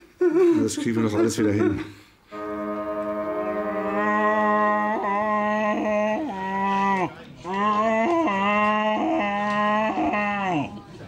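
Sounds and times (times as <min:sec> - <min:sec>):
speech: 0:00.3 - 0:02.0
human voice imitating a bull moose call: 0:02.3 - 0:10.7.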